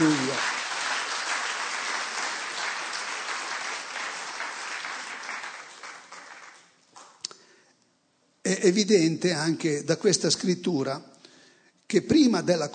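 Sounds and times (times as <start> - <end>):
crowd applauding: 0.0 - 7.2
speech: 8.5 - 11.1, 11.9 - 12.7.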